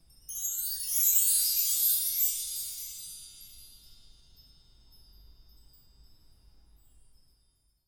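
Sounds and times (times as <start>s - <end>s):
event chimes: 0.0s - 7.8s.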